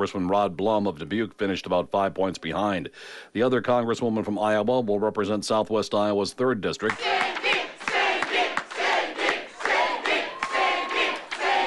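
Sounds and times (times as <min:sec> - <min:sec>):
speech: 0:00.0 - 0:07.6
people clapping: 0:06.8 - 0:11.6
crowd of supporters cheering and whooping: 0:06.9 - 0:11.6.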